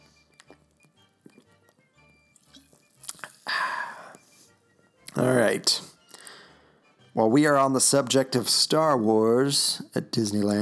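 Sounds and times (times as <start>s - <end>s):
loud breathy slurp sipping a drink: 2.4s - 3.5s
mouth sounds and small clicks: 2.5s - 3.4s
speech: 5.2s - 5.9s, 7.2s - 10.6s.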